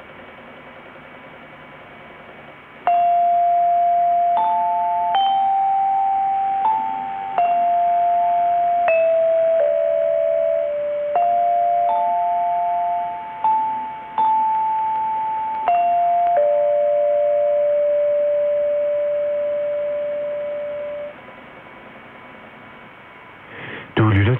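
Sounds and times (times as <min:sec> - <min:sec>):
faint radio static: 0:00.0 - 0:24.3
steady hum: 0:00.0 - 0:24.3
radio interval signal chime melody over longwave broadcast: 0:02.9 - 0:21.1.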